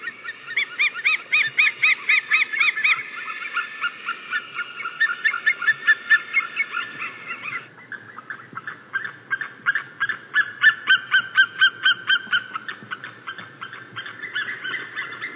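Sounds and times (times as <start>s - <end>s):
White-tailed eagle giving barking yelps: 0.0s - 15.3s.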